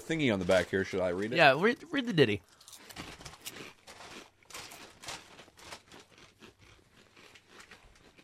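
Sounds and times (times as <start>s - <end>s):
speech: 0.1s - 2.6s
crunching jalapeno chips being chewed: 2.4s - 8.2s.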